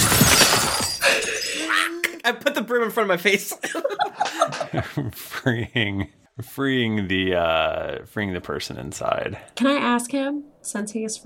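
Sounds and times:
crystal shattering: 0.0 - 1.9
speech: 2.3 - 11.2
laughter: 3.2 - 6.6.

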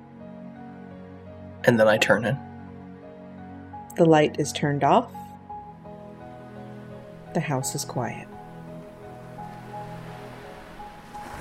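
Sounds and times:
speech: 1.6 - 2.5, 4.0 - 5.2, 7.4 - 8.3
waves rolling onto a shore: 9.2 - 11.3.

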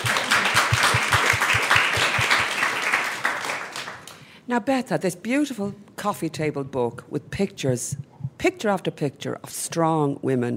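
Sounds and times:
audience applauding: 0.0 - 4.2
speech: 4.5 - 10.5.

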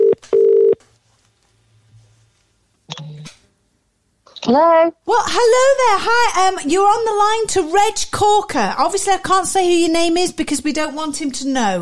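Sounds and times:
telephone keypad tones dialling a number: 0.0 - 0.8
speech: 4.5 - 11.8.

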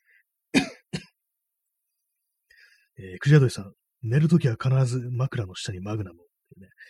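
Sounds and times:
person coughing: 0.5 - 1.2
speech: 3.0 - 6.8.

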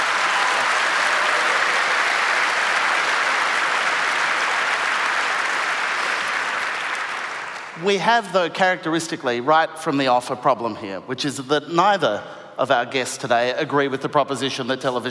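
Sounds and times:
sustained applause from a sizeable audience: 0.0 - 7.8
speech: 7.8 - 15.0.

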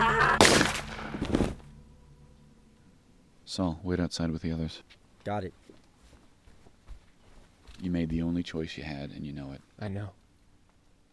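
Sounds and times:
gunshot: 0.4 - 1.6
speech: 3.6 - 5.8, 7.8 - 10.2.

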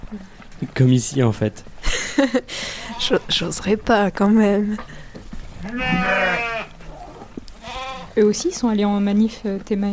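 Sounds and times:
speech: 0.1 - 4.9, 5.6 - 6.5, 8.2 - 9.9
laughter: 1.8 - 2.8
goats bleating in a barn: 5.6 - 7.0, 7.6 - 8.2.

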